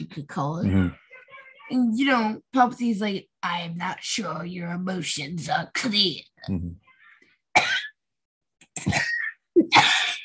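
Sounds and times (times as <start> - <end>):
speech: 0.0 - 1.0, 1.7 - 6.8, 8.8 - 9.1
person coughing: 7.6 - 8.0, 8.8 - 10.2.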